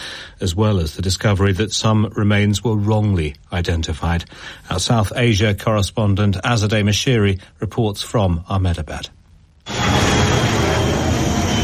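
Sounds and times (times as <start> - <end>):
speech: 0.4 - 9.2
airplane flying over a crash site in Ahmedabad near an airport runway: 9.7 - 11.6.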